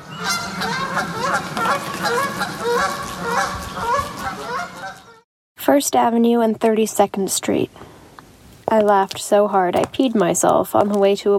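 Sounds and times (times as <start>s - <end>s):
flock of geese honking: 0.0s - 5.2s
speech: 5.7s - 7.9s, 8.7s - 11.3s.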